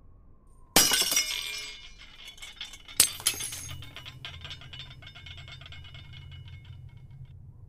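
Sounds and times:
glass window smashed by a fist wrapped in shirt cloth: 0:00.8 - 0:06.2
falling glass shards tinkling: 0:00.8 - 0:06.9.

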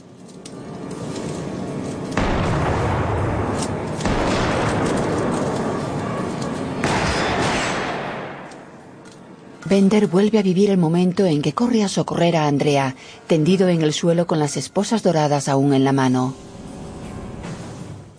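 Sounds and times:
gunshots in a crime action film scene: 0:02.2 - 0:08.8
speech: 0:09.7 - 0:16.5.

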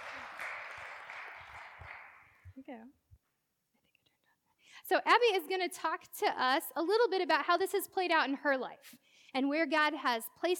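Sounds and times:
audience applauding: 0:00.0 - 0:02.4
speech: 0:02.7 - 0:03.0, 0:04.8 - 0:10.5.

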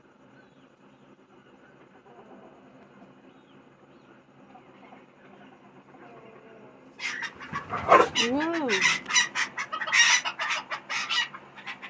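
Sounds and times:
chickens squawking and clucking during mating: 0:06.9 - 0:11.8
speech: 0:07.7 - 0:09.0.

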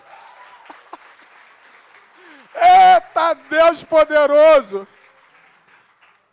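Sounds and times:
audience applause: 0:00.0 - 0:06.3
speech: 0:03.3 - 0:05.0.

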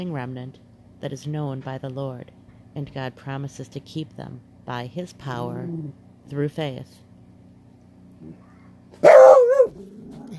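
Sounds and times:
speech: 0:00.0 - 0:07.1, 0:08.2 - 0:09.1
dog barking: 0:09.0 - 0:09.8.

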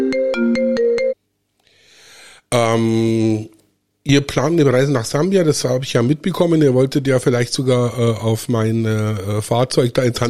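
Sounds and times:
melodic electronic phone ringtone for an incoming call: 0:00.0 - 0:01.2
speech: 0:02.5 - 0:10.2.

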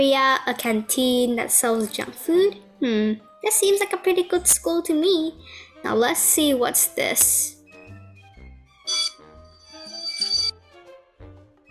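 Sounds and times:
speech: 0:00.0 - 0:07.6
school bell ringing: 0:08.9 - 0:10.5.

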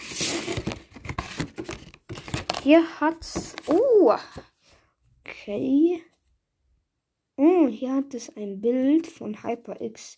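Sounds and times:
microphone package rustling and crinkling while opened: 0:00.0 - 0:04.5
speech: 0:02.6 - 0:04.5, 0:05.5 - 0:06.1, 0:07.4 - 0:10.1.

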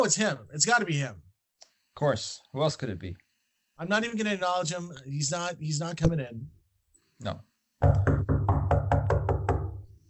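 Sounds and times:
speech: 0:00.0 - 0:01.2, 0:02.0 - 0:03.2, 0:03.8 - 0:06.6, 0:07.2 - 0:08.2
loud resonant knocking on a door: 0:07.8 - 0:09.9.

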